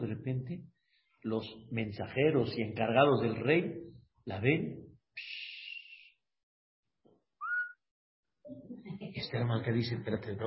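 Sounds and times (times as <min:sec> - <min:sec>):
speech: 0:00.1 - 0:05.4, 0:09.2 - 0:10.4
catcall whistle: 0:07.4 - 0:07.8.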